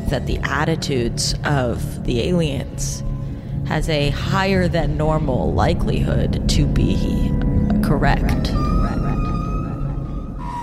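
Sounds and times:
dense low rumbling background: 0.0s - 10.6s
speech: 0.1s - 3.1s, 3.7s - 8.7s
whale song with long steady tonal moans: 7.4s - 10.6s.

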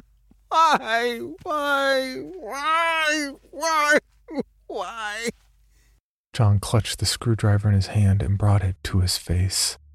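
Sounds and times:
man sobbing while crawling toward an object: 0.5s - 5.3s
speech: 0.5s - 5.4s, 6.4s - 9.8s.

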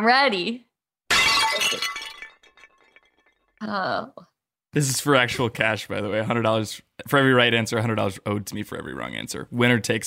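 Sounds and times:
speech: 0.0s - 0.7s, 1.6s - 2.0s, 3.6s - 10.0s
bowl breaking: 1.1s - 3.6s.

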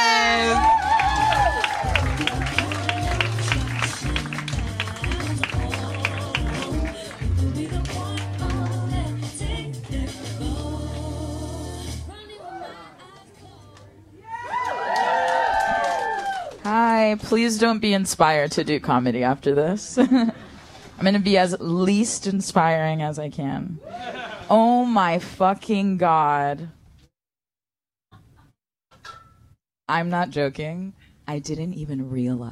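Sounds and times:
audience at a comedy show clapping and cheering: 0.0s - 9.4s, 14.2s - 16.7s
loud bouncy walk-on music with a thumping bass line: 1.0s - 11.5s
speech: 17.1s - 20.4s, 21.0s - 26.8s, 29.9s - 32.5s
laughter: 23.8s - 24.5s.

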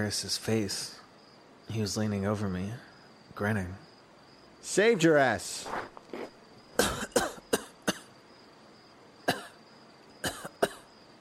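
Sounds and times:
speech: 0.0s - 1.0s, 1.7s - 3.8s, 4.6s - 6.3s
man coughing up water: 6.8s - 8.1s, 9.3s - 9.6s, 10.2s - 10.8s.

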